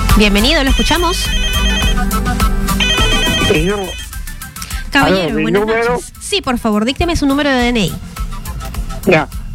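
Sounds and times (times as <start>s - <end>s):
speech: 0.2s - 2.5s, 3.5s - 4.1s, 4.9s - 8.1s, 9.1s - 9.4s
telephone ringtone signalling an incoming call: 0.6s - 4.2s.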